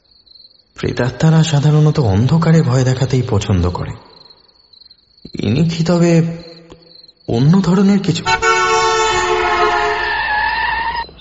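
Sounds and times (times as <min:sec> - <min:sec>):
speech: 0:00.8 - 0:04.1, 0:05.3 - 0:06.5, 0:07.3 - 0:08.4
large Punjab lorry horn blaring: 0:08.2 - 0:10.4.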